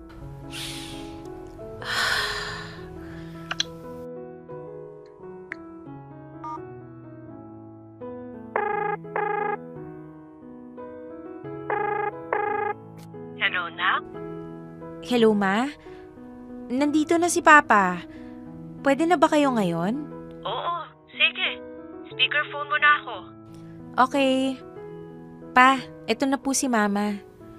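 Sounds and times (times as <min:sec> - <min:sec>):
soft music: 0:00.0 - 0:27.5
breathy vocal sounds: 0:00.5 - 0:03.6
cellphone ringing with short bright tonal bursts: 0:06.4 - 0:06.6, 0:08.6 - 0:09.7, 0:11.7 - 0:12.8
speech: 0:15.1 - 0:15.9, 0:16.7 - 0:18.2, 0:18.8 - 0:20.6, 0:24.0 - 0:24.7, 0:25.6 - 0:27.3.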